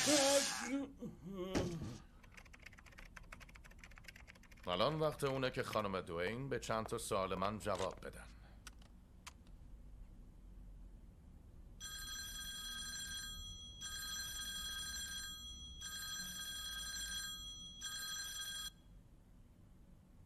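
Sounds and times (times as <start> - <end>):
speech: 0.0 - 2.1, 4.6 - 8.4
telephone ringing unanswered: 11.8 - 18.8.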